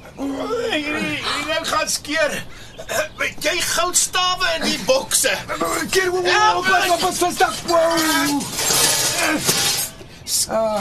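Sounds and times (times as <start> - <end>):
speech: 0.2 - 9.7, 10.4 - 10.7
two metal garden statues falling and crashing: 5.7 - 10.1.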